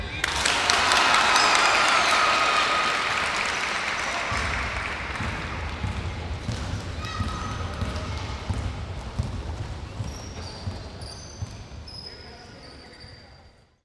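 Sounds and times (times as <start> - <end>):
light applause: 0.2 - 6.0
ball dribbling: 5.2 - 10.8.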